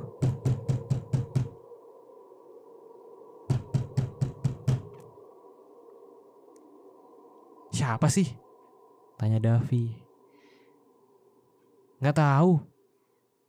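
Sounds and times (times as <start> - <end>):
faint steady hum: 0.0 - 13.4
loud rapid knocking on a room door: 0.1 - 1.6, 3.5 - 4.9
speech: 7.8 - 8.5, 9.2 - 10.0, 12.0 - 12.7.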